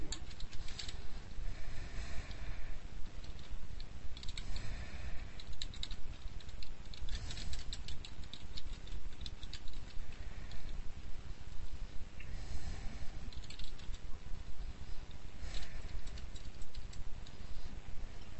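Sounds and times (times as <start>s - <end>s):
low rumble: 0.0s - 18.3s
computer keyboard typing: 4.2s - 4.4s, 5.4s - 10.0s, 13.3s - 14.0s, 15.5s - 17.0s.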